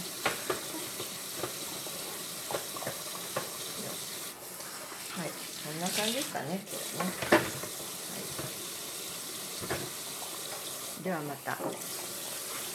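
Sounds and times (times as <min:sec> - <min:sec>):
dishes and utensils clinking and clattering in a sink: 0:00.0 - 0:04.1, 0:05.9 - 0:08.7, 0:09.6 - 0:10.8, 0:11.5 - 0:12.7
faucet running into a sink while washing dishes: 0:00.0 - 0:12.7
speech: 0:05.8 - 0:07.6, 0:11.0 - 0:12.0.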